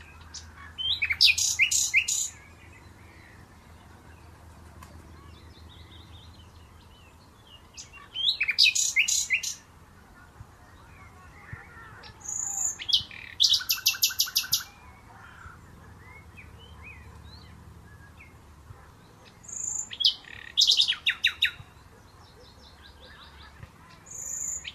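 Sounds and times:
common nightingale singing: 0.0 - 4.4, 5.2 - 9.7, 10.6 - 24.7.

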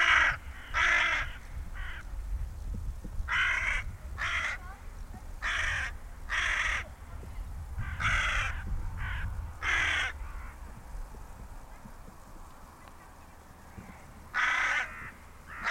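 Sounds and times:
carrion crow Corvus corone cawing: 0.0 - 2.0, 3.3 - 4.6, 5.4 - 6.9, 7.8 - 10.7, 14.3 - 15.7.

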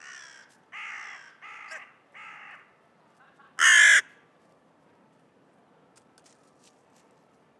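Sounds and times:
Carrion crow Corvus corone cawing: 0.0 - 2.7, 3.6 - 4.1.

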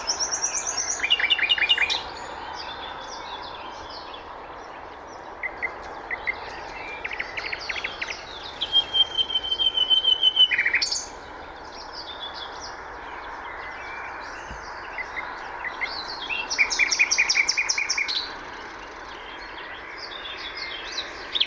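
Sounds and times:
Common nightingale Luscinia megarhynchos singing: 0.0 - 21.4.

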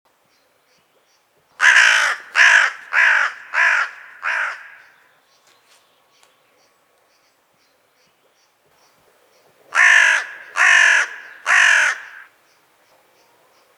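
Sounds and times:
carrion crow cawing: 1.6 - 5.0, 9.7 - 12.4.

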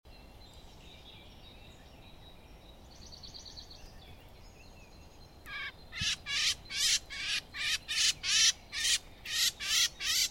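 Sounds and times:
Eurasian blackcap harsh churr calls: 5.5 - 10.2.

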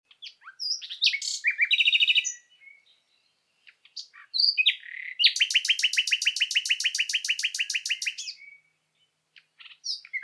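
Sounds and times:
common nightingale Luscinia megarhynchos song with whistles and rattling trills: 0.1 - 10.2.

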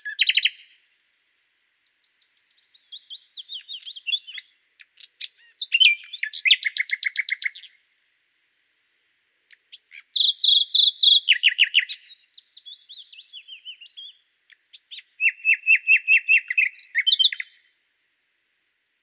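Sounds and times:
common nightingale singing: 0.0 - 17.8.

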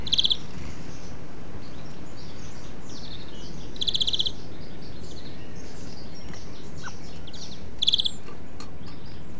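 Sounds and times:
European greenfinch Chloris chloris chattering trill: 0.0 - 0.5, 3.0 - 4.5, 6.7 - 9.0
faint bird calls: 0.0 - 9.3
steady low noise: 0.0 - 9.3.

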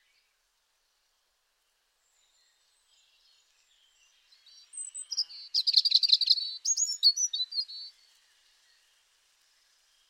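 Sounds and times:
European robin Erithacus rubecula singing: 2.3 - 8.0.

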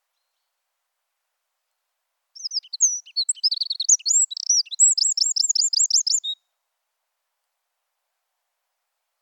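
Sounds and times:
Eurasian wren song, Troglodytes troglodytes: 2.4 - 6.4.

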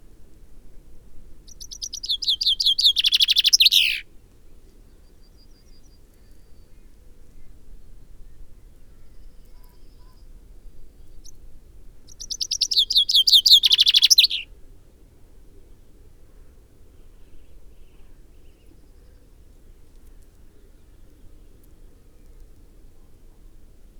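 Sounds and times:
common chaffinch Fringilla coelebs singing: 1.5 - 4.0, 12.1 - 14.5.

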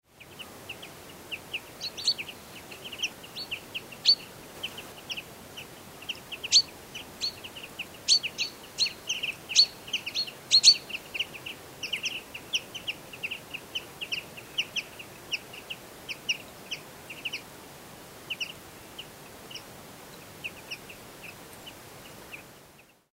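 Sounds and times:
common chaffinch Fringilla coelebs calling: 0.2 - 17.4.

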